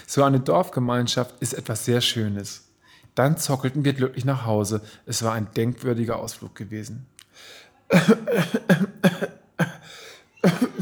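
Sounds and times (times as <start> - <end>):
speech: 0.0 - 9.4, 10.4 - 10.8
harsh wet coughing: 7.9 - 10.8.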